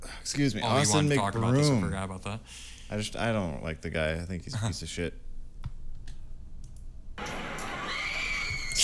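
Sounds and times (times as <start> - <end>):
speech: 0.2 - 5.3
woman screaming shrilly at a fight: 7.9 - 8.8.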